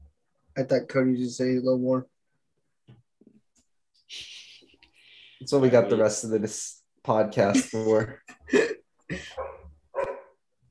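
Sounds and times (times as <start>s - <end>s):
speech: 0.6s - 2.1s, 4.1s - 4.3s, 5.4s - 9.2s
dog barking: 9.3s - 10.4s.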